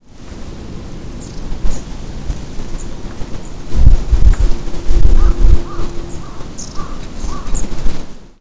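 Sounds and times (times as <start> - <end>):
long-tailed tit bird song at Lake Utonai in Tomakomai Hokkaido: 1.2 - 2.0, 2.6 - 8.1.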